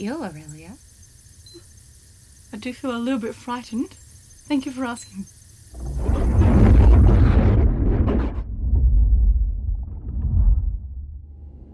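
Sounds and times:
speech: 0.0s - 0.9s, 2.5s - 6.4s
loud crackling explosion blast: 5.8s - 11.6s
long heavy rumble after explosion: 5.8s - 11.7s.

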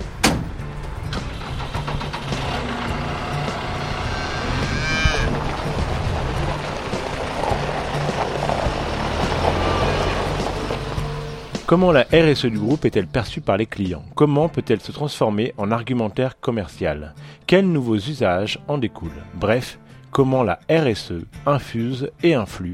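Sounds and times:
low rumble of machinery and engine noise: 0.0s - 12.4s
cattle lowing in a busy farmyard: 2.6s - 5.8s
speech: 11.7s - 22.7s.

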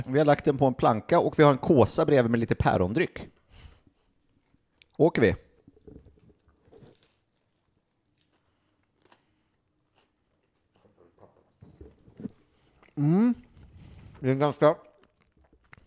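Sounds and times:
speech: 0.0s - 3.4s, 5.0s - 5.4s, 13.0s - 13.5s, 14.2s - 14.9s
biting and chewing a messy sandwich: 5.6s - 14.2s, 14.8s - 15.8s.

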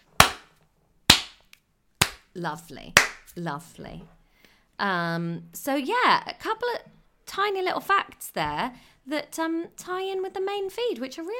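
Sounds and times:
loud sharp slow hand claps: 1.1s - 2.2s, 3.0s - 3.2s
speech: 2.4s - 4.2s, 4.8s - 11.3s.

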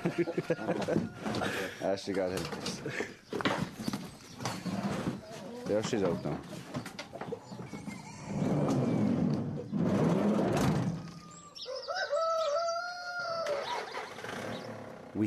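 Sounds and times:
rooster crowing: 0.0s - 1.6s, 11.0s - 13.9s
laughter: 0.0s - 2.0s, 2.6s - 3.4s, 7.7s - 8.6s
speech: 0.0s - 3.6s, 5.7s - 6.6s
chickens clucking: 0.0s - 9.9s, 10.9s - 14.7s
rustling: 2.2s - 11.3s.

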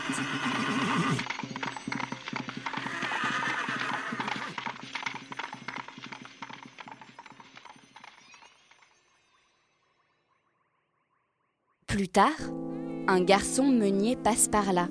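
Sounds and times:
horse whinnying: 0.0s - 4.8s
horse galloping hoofbeats: 0.0s - 9.4s
speech: 12.0s - 14.8s.

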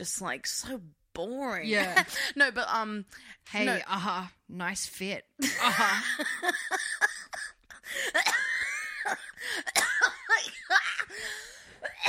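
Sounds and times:
speech: 0.0s - 10.5s
person coughing rough wheezy coughs: 8.1s - 11.1s, 11.8s - 12.0s.

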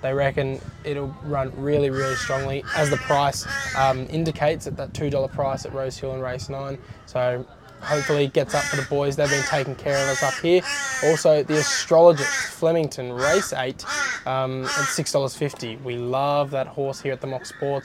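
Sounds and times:
speech: 0.0s - 17.8s
crow cawing: 1.9s - 3.8s, 7.8s - 12.6s, 13.2s - 15.0s.

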